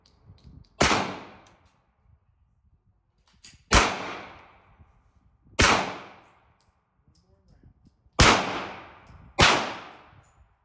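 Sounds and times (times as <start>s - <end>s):
9mm pistol gunshots: 0.8s - 1.4s, 3.7s - 4.6s, 5.6s - 6.2s, 8.2s - 10.1s.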